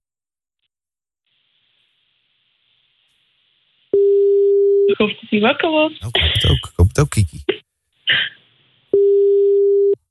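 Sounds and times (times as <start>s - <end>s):
ringback tone of an outgoing phone call: 4.0s - 4.9s, 9.0s - 10.0s
speech: 5.0s - 8.3s.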